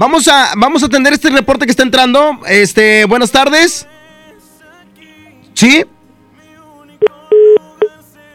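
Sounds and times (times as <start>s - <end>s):
speech: 0.0s - 3.9s, 5.6s - 5.9s
telephone line tone on a failed call: 7.0s - 7.9s.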